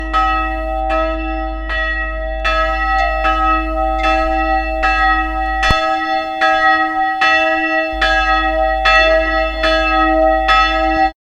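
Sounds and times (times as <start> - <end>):
church tower bell ringing: 0.0 - 11.2.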